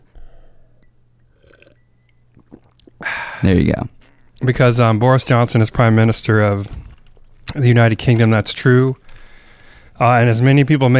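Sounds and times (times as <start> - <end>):
low hum: 0.0 - 10.9
person drinking water with sipping and swallowing: 0.8 - 3.3
speech: 3.4 - 6.8, 7.6 - 9.0, 10.0 - 10.9.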